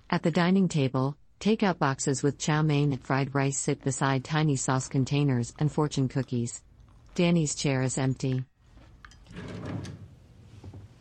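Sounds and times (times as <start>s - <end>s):
speech: 0.1s - 8.5s
drawer sliding in a bathroom during rummaging: 9.2s - 10.9s.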